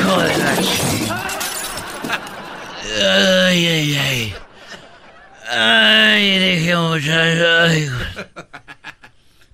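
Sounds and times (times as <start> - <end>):
glass shattering with breaking debris: 0.0 - 2.6
multi-vehicle pile-up crash involving a trailer truck: 0.0 - 2.7
laughter: 1.1 - 5.9, 7.9 - 9.2
speech: 5.5 - 8.5.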